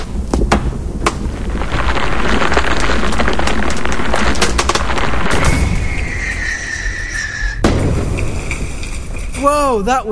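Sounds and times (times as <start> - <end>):
firework roaring inside a shed: 0.0 - 9.5
rising firework whistle: 5.1 - 9.2
speech: 9.7 - 10.1.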